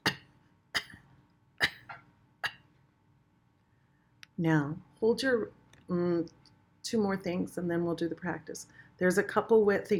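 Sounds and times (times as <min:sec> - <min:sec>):
person coughing at end of exhalation: 0:00.0 - 0:01.0, 0:01.6 - 0:02.7
speech: 0:04.4 - 0:09.9.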